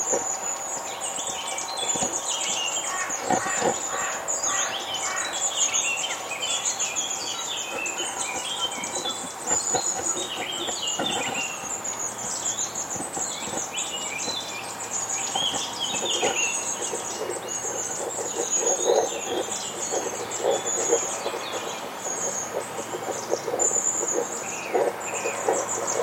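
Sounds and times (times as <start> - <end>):
long-tailed tits calling: 0.0 - 26.0.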